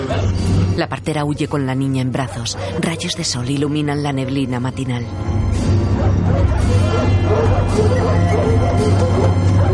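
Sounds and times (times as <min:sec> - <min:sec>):
speech: 0:00.8 - 0:09.7
dogs barking and yipping while running through a forest: 0:01.9 - 0:09.7.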